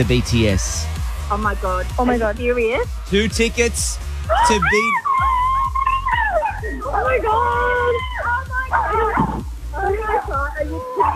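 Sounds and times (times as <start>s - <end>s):
speech: 0.0s - 5.3s, 6.7s - 11.1s
loud overlapping excited voices: 0.0s - 11.1s
people shrieking: 4.2s - 11.1s
dog barking and yipping in excited bursts: 4.3s - 11.1s.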